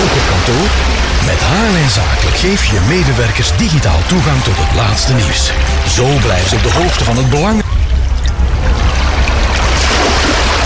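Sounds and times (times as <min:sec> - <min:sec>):
rushing, splashing stream with deep low rumble: 0:00.0 - 0:10.6
speech: 0:00.5 - 0:07.6.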